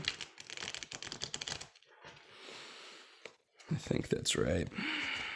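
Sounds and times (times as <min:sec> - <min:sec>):
Thoth Tarot deck being shuffled: 0:00.0 - 0:01.8
speech: 0:03.7 - 0:05.2.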